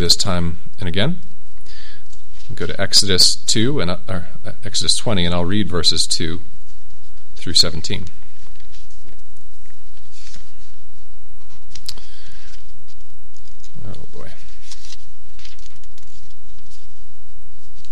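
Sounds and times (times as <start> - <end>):
speech: 0.0 - 1.4, 2.5 - 6.6, 7.4 - 8.2
faint hum: 0.0 - 17.9
Bible pages being turned: 6.7 - 17.9.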